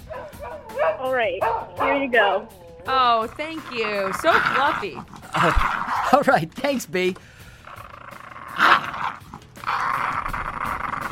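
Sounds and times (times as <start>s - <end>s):
dogs growling and snarling: 0.0s - 6.4s, 7.4s - 11.1s
speech: 1.0s - 7.4s.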